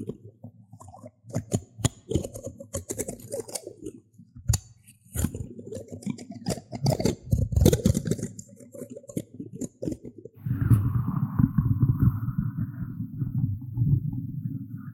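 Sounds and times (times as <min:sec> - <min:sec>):
plastic spoons tapping and scraping: 0:01.4 - 0:10.2
steady low rumble: 0:10.4 - 0:14.4.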